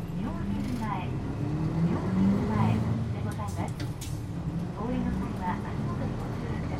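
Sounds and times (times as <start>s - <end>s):
bus engine pulling away from stop and accelerating: 0.0s - 6.7s.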